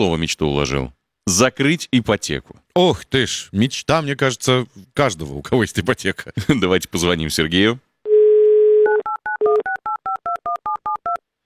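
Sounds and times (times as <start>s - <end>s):
speech: 0.0s - 7.9s
telephone dial tone: 8.1s - 11.2s.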